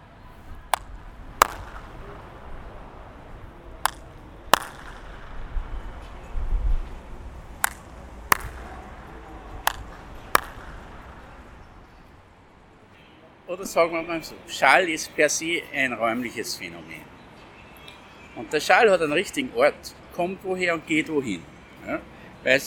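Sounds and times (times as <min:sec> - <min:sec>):
sharp hand claps in pairs: 0:00.8 - 0:01.8, 0:03.9 - 0:05.0, 0:07.6 - 0:08.9, 0:09.7 - 0:11.2
speech: 0:13.5 - 0:17.1, 0:18.4 - 0:22.6.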